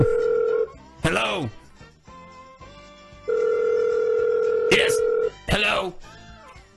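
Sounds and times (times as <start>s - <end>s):
phone line ringing through a call to a restaurant: 0.0s - 0.7s, 3.3s - 5.3s
speech: 1.4s - 1.6s.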